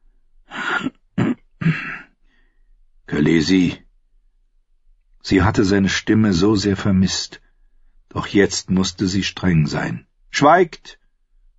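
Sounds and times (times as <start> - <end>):
man clearing his throat: 0.5 - 2.2
speech: 3.1 - 3.8, 5.2 - 7.4, 8.1 - 11.0.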